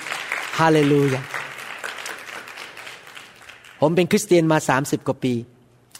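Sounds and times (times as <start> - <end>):
audience clapping hands: 0.0 - 4.2
speech: 0.6 - 1.3, 3.8 - 5.6.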